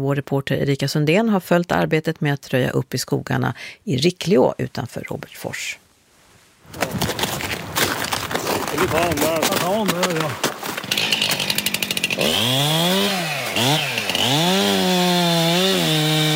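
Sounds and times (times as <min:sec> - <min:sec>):
speech: 0:00.0 - 0:05.8, 0:06.7 - 0:07.4, 0:08.8 - 0:10.6, 0:12.2 - 0:14.8
chainsaw revving as it cuts a wind-felled pine in snow in Sweden: 0:08.9 - 0:16.3.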